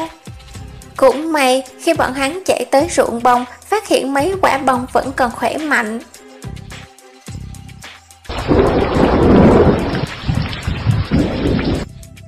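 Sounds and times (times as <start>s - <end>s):
speech: 1.0s - 6.1s
heavy thunder rumbling overhead during a late-summer storm: 8.3s - 11.9s
steady rain pattering during a late-summer storm: 8.3s - 11.9s.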